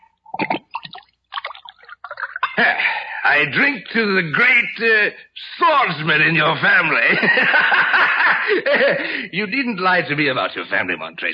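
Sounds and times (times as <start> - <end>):
wine poured into a glass: 0.4 - 2.6
laughter: 2.5 - 3.0, 7.0 - 9.2
speech: 2.6 - 11.3.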